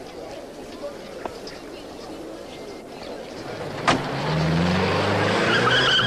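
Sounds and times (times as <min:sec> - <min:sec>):
car engine pulling away: 0:03.4 - 0:06.0.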